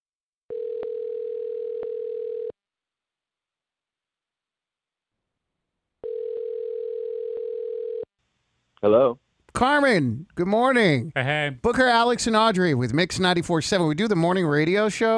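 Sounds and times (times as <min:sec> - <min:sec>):
buzzing telephone ringback tones after dialing: 0:00.5 - 0:02.5, 0:06.0 - 0:08.1
speech: 0:08.8 - 0:15.1.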